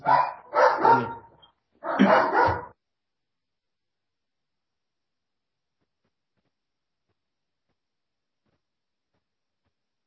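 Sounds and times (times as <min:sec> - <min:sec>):
dog barking: 0:00.0 - 0:02.8.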